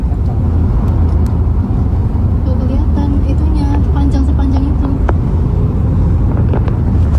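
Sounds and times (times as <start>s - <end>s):
idling and slow-moving vehicles in a traffic jam: 0.0s - 7.1s
wind buffeting: 0.0s - 7.1s
indistinct voices: 2.4s - 5.1s.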